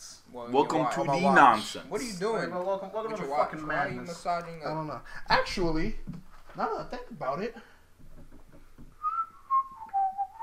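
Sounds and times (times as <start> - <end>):
speech: 0.3 - 7.7
person whistling a shaky wavering tune: 9.0 - 10.4.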